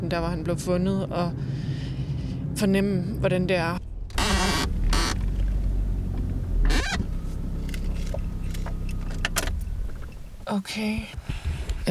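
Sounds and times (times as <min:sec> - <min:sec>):
speech: 0:00.1 - 0:01.7, 0:02.6 - 0:03.8, 0:10.5 - 0:11.8
car approaching along a countryside road at night: 0:03.8 - 0:10.5.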